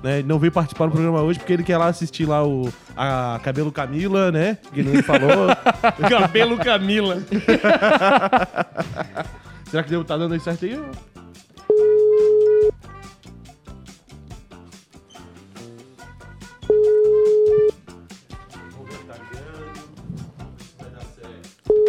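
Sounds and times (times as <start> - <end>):
speech: 0.0 - 11.1
busy music: 0.0 - 21.8
laughter: 4.8 - 9.8
ringback tone of an outgoing phone call: 11.7 - 12.7, 16.7 - 17.8.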